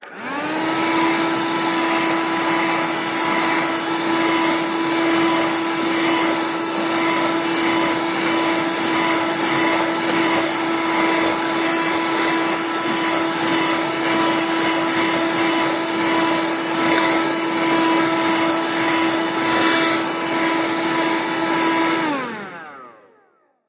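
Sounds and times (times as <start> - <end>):
handheld vacuum cleaner: 0.0 - 23.6.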